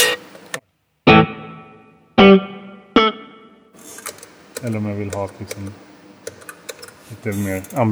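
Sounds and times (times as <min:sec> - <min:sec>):
electric guitar chords with spring reverb: 0:00.0 - 0:00.3, 0:01.1 - 0:03.6
speech: 0:02.3 - 0:02.5, 0:04.6 - 0:05.9, 0:07.1 - 0:07.9.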